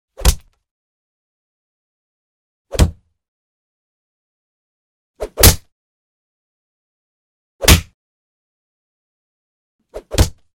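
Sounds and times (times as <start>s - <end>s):
punches: 0.2s - 0.6s, 2.7s - 3.0s, 5.4s - 5.7s, 7.6s - 8.0s, 10.0s - 10.5s.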